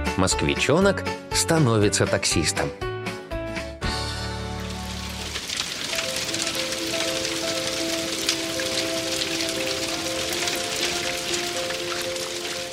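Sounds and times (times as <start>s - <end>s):
speech: 0.2s - 2.9s
steady autumn rain pouring down: 3.9s - 12.7s.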